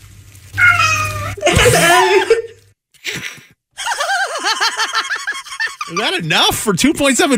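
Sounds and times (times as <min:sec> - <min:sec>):
cat meowing loudly with drawn-out meows: 0:00.5 - 0:01.4
laughter: 0:01.4 - 0:06.3
speech: 0:01.6 - 0:02.3, 0:06.0 - 0:07.3.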